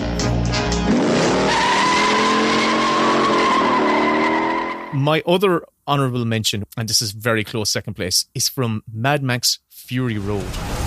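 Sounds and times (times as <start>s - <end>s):
powerful muscle car engine roaring: 0.7s - 5.0s
tires squealing: 0.9s - 5.0s
speech: 5.0s - 10.8s.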